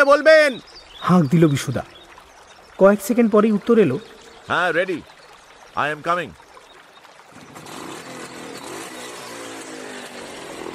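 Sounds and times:
speech: 0.0 - 2.0, 2.8 - 5.1, 5.8 - 6.4
motorcycle engine revving as the bike sets off: 7.3 - 10.7.

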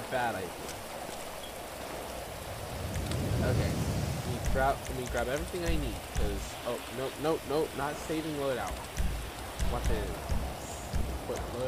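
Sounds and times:
steady rain pouring down in a video game: 0.0 - 11.6
speech: 0.1 - 1.0, 3.4 - 9.0, 9.7 - 10.3, 11.3 - 11.6.

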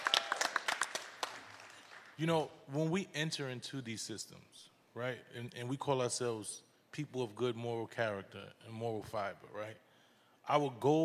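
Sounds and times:
scattered audience applause: 0.0 - 2.1
speech: 2.2 - 9.8, 10.5 - 11.0.

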